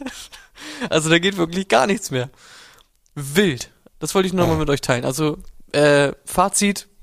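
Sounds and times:
speech: 0.9 - 2.5, 3.1 - 6.9
voice imitating the glitching weapon sound of a lagging video game zombie mode: 4.4 - 4.7.

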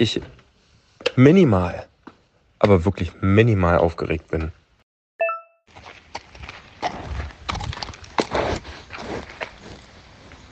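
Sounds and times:
speech: 0.0 - 0.4, 1.1 - 1.9, 2.6 - 4.6
horse snorting and snuffling: 6.8 - 9.9.

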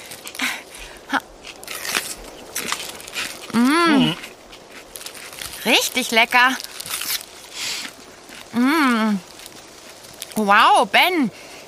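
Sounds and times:
chewing apple: 0.0 - 10.5
biting into a fresh apple during a mountain hike: 1.4 - 10.4
speech: 5.7 - 6.7, 8.6 - 9.3, 10.4 - 11.4.

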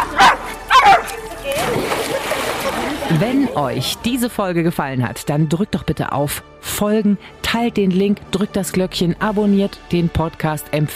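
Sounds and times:
dog barking: 0.0 - 1.1
laughter: 1.3 - 3.9
speech: 3.1 - 10.9.

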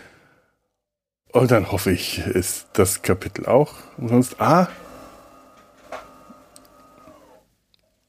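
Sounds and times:
speech: 1.3 - 4.8
coffee machine whirring and rumbling while brewing: 1.4 - 7.6.

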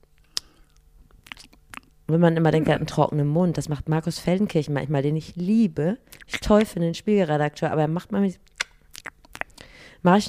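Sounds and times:
person imitating noisy wet chewing with lip smacks: 0.4 - 2.0, 8.5 - 9.6
speech: 2.1 - 8.5, 10.0 - 10.2.

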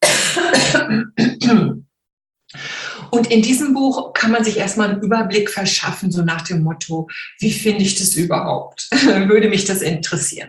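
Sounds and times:
person coughing: 0.0 - 1.8
speech: 2.5 - 10.4.

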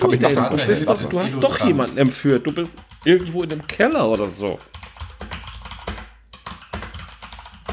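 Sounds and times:
speech: 0.0 - 4.8
typing on a mechanical keyboard: 2.4 - 7.7.

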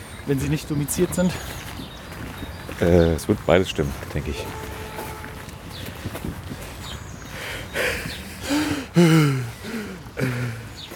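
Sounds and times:
speech: 0.3 - 1.7, 2.8 - 4.7, 9.0 - 9.5
two men heavy strained breathing imitating old men outdoors in a park in spring: 1.2 - 1.9, 5.6 - 10.9.

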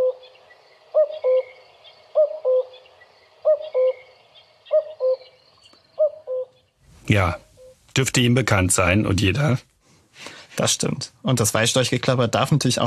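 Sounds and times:
faint bird chatter: 0.0 - 7.8
common cuckoo two-note cu-coo call: 0.0 - 7.9
speech: 7.1 - 9.7, 10.6 - 12.8.

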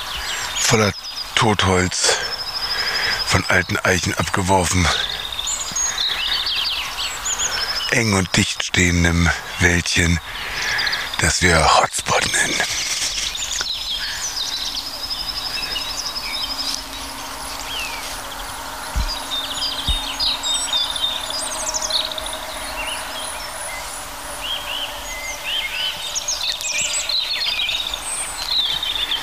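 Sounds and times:
European robins singing in a dense wood of old oaks and deadwood: 0.0 - 29.2
steady low hum: 0.0 - 29.2
speech: 0.7 - 2.1, 3.3 - 5.1, 7.9 - 10.4, 11.2 - 12.8
low knocks: 18.9 - 19.2, 19.8 - 20.4.

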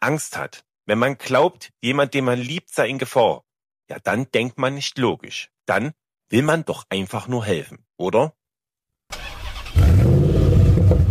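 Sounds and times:
speech: 0.0 - 8.4
car pulling away with low engine rumble: 9.2 - 11.0.

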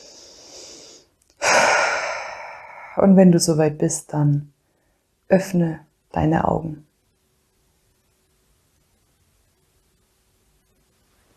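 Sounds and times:
deep breath in and out during a guided meditation: 0.0 - 3.0
speech: 3.0 - 4.6, 5.3 - 6.9.

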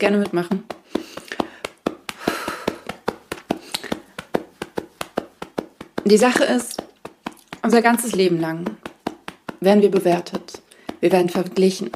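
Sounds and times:
speech: 0.0 - 1.2, 6.1 - 6.8, 7.6 - 8.9, 9.6 - 11.9
clothing rustling: 0.0 - 10.3
hands patting on shoulders in a butterfly hug exercise: 0.0 - 11.9
soft breath: 0.8 - 4.2, 10.6 - 11.0.

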